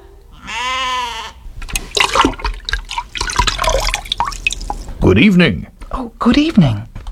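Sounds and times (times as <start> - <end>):
goat-like bleat: 0.3 - 1.4
water splashing and sloshing as it is drawn and poured at a well: 1.5 - 5.1
speech: 5.1 - 6.9.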